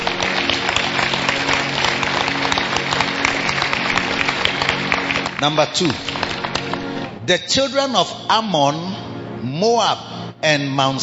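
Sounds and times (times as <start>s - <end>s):
large crowd applauding: 0.0s - 7.1s
speech: 5.4s - 6.2s, 7.3s - 11.0s.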